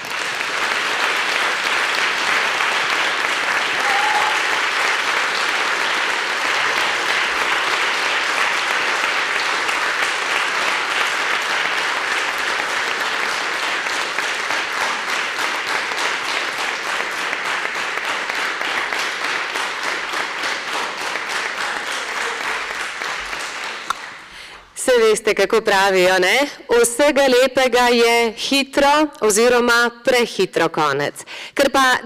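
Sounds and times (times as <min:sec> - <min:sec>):
audience applause: 0:00.0 - 0:24.7
speech: 0:25.3 - 0:32.0.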